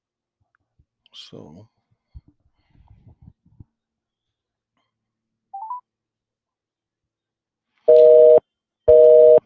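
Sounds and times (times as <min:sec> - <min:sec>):
speech: 0:01.2 - 0:01.8
telephone busy signal beeps: 0:07.9 - 0:09.4.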